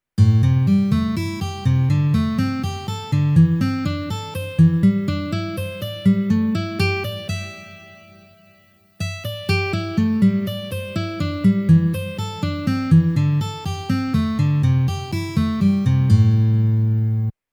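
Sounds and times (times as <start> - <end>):
guitar playing A minor pentatonic on three strings: 0.2 - 17.4.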